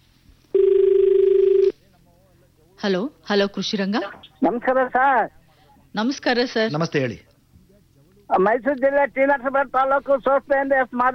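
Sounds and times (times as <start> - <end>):
electronic telephone ring tone for an incoming radio phone-in call: 0.6 - 1.8
speech: 2.8 - 7.3, 8.3 - 11.1.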